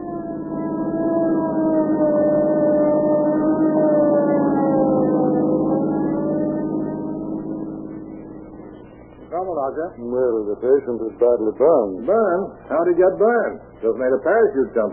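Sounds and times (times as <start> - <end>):
ambulance siren wailing: 0.0 - 8.7
speech: 9.9 - 14.9.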